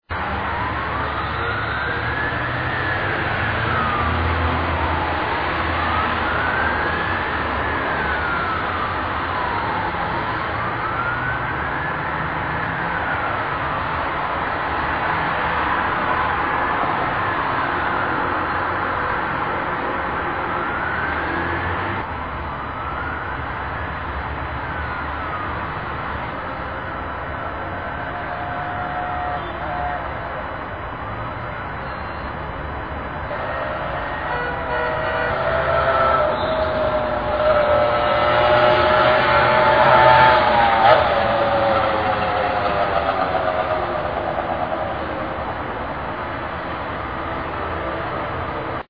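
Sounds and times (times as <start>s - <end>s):
siren: 0.1s - 48.8s
bike horn: 33.3s - 36.7s.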